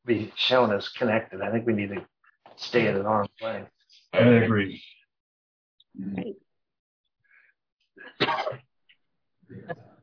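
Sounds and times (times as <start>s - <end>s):
speech: 0.1s - 5.0s, 6.0s - 6.4s, 8.1s - 8.6s, 9.5s - 9.9s
sharp explosive sneeze: 8.1s - 8.6s.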